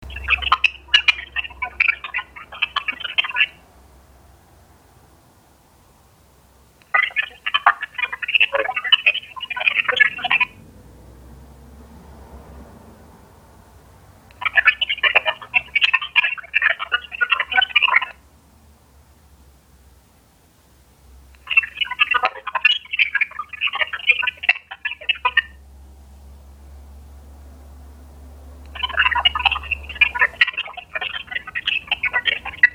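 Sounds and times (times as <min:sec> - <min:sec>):
ProVoice encrypted radio voice: 0:00.0 - 0:03.6, 0:06.8 - 0:10.6, 0:14.3 - 0:18.2, 0:21.4 - 0:25.6, 0:28.7 - 0:32.7.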